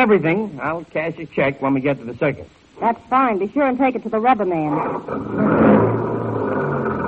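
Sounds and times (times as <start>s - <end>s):
speech: 0.0s - 6.2s
car engine revving: 5.0s - 7.0s.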